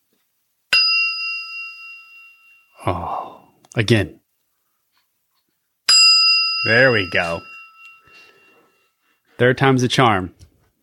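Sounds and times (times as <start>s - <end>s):
small bell ringing: 0.7s - 2.9s, 5.9s - 9.0s
speech: 2.8s - 4.2s, 6.6s - 7.5s, 9.4s - 10.4s.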